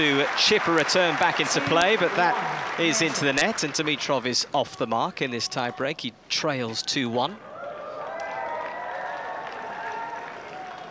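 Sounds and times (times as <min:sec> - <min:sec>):
scattered clapping in a stadium crowd: 0:00.0 - 0:04.0, 0:08.2 - 0:10.8
speech: 0:00.0 - 0:07.5
stadium crowd murmuring: 0:01.1 - 0:03.7.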